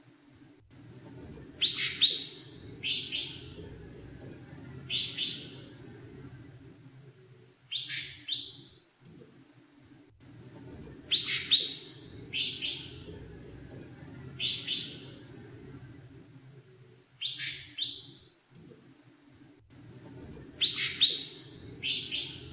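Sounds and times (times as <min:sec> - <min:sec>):
continuous low-pitched background noise: 0:00.0 - 0:22.5
leafbird song of loud clear two-part warbled phrases: 0:01.6 - 0:03.8, 0:04.8 - 0:05.8, 0:11.1 - 0:13.2, 0:14.2 - 0:15.6, 0:20.6 - 0:22.5.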